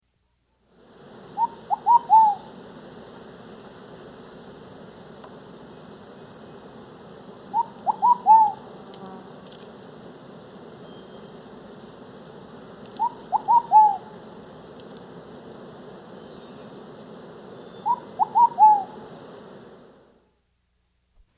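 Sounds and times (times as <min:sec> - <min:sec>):
Ruddy Pigeon from South America: 0:01.4 - 0:02.5, 0:07.5 - 0:08.6, 0:12.9 - 0:14.2, 0:17.8 - 0:19.0.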